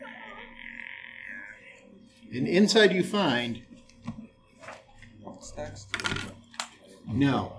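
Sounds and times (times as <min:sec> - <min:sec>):
voice imitating a heavy iron door creaking open after its lock is picked: 0:00.0 - 0:01.7
speech: 0:02.3 - 0:03.7, 0:05.6 - 0:06.3, 0:07.1 - 0:07.5.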